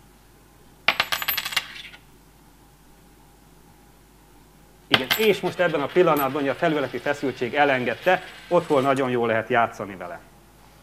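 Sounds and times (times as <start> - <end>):
coin dropping onto a hard surface and rattling: 0.9 - 2.0, 4.9 - 9.0
speech: 4.9 - 10.3.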